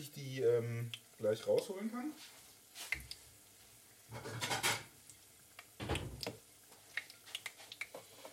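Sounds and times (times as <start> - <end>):
speech: 0.0 - 3.1, 4.1 - 4.8
plate scraping and rubbing when fetched from a cupboard: 4.1 - 4.8.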